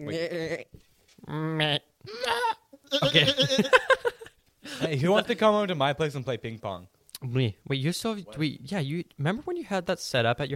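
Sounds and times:
speech: 0.0s - 1.8s, 3.1s - 3.8s, 4.9s - 10.5s
goat bleating: 2.1s - 3.6s
laughter: 2.9s - 5.0s.

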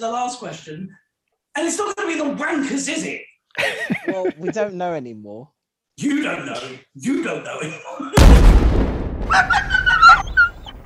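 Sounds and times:
speech: 0.0s - 1.0s, 1.6s - 8.6s, 9.3s - 9.7s
laughter: 3.6s - 4.7s
spaceship destroyed in a video game explosion: 8.2s - 9.4s.

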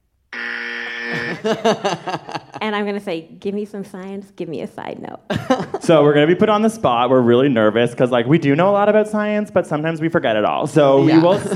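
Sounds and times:
small handheld buzzer harsh electronic buzz: 0.3s - 2.6s
laughter: 1.1s - 2.8s, 5.3s - 6.3s, 10.8s - 11.5s
speech: 1.3s - 11.5s.

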